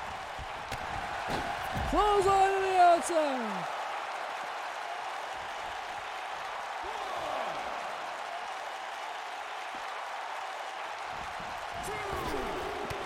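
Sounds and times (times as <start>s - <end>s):
big arena crowd cheering wildly at wrestling: 0.0s - 13.0s
speech: 1.3s - 3.8s.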